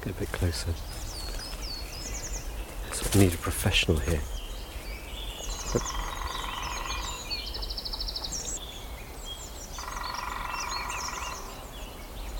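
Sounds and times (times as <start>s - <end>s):
lesser spotted woodpecker call notes: 0.0s - 8.7s, 9.7s - 12.3s
birdsong: 0.0s - 12.3s
speech: 0.1s - 1.0s, 3.0s - 4.4s, 5.7s - 6.0s.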